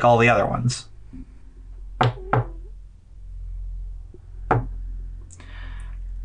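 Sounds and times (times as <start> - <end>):
speech: 0.0 - 1.2
firm knocks on a door: 2.0 - 2.6, 4.5 - 4.7.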